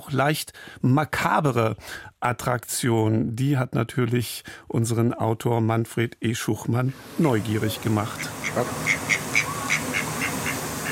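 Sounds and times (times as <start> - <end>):
speech: 0.1 - 9.3
ducks quacking in a garden in Northumberland: 7.6 - 10.8.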